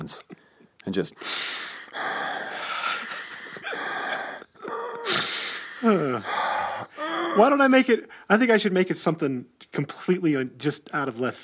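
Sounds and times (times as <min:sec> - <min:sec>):
loud exaggerated sniffing inhale: 0:00.4 - 0:08.3
speech: 0:00.9 - 0:01.5, 0:05.8 - 0:06.4, 0:07.4 - 0:11.4.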